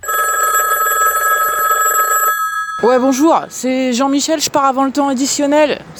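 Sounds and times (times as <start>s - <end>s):
telephone ringing with a bright warbling electronic trill: 0.0s - 3.9s
speech: 2.8s - 5.9s.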